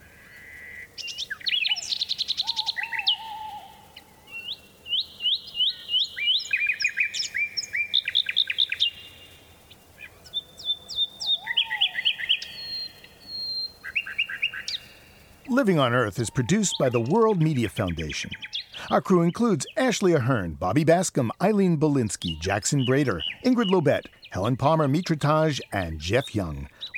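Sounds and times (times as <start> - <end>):
nightingale singing rapid varied trills and whistles: 0.0 - 26.9
speech: 15.6 - 26.9.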